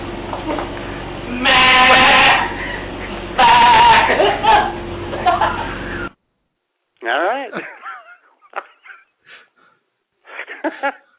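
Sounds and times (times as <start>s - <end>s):
person imitating sheep bleating in the wind: 1.3s - 2.5s, 3.4s - 4.1s
laughter: 3.9s - 6.0s, 7.5s - 9.2s, 10.3s - 11.1s.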